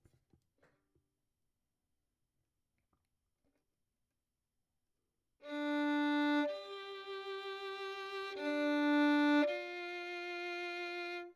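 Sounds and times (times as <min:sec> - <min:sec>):
violin: 0:05.4 - 0:11.3.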